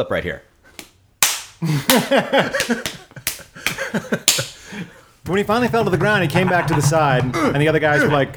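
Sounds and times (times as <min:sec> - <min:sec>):
speech: 0:00.0 - 0:00.5, 0:01.6 - 0:03.0, 0:03.9 - 0:08.3
loud sharp slaps in a fight: 0:00.7 - 0:04.6
laughter: 0:01.6 - 0:08.3
short voiced yelps and shouts in a fight: 0:05.6 - 0:08.3.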